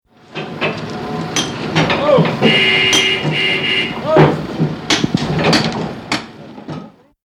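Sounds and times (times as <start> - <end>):
construction site noise: 0.1 - 7.2
voices: 1.8 - 4.6
car horn: 2.4 - 4.4.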